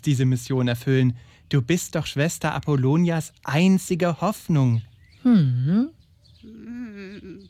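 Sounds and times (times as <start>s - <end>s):
speech: 0.0s - 6.6s
human voice imitating raven calls: 5.2s - 7.4s.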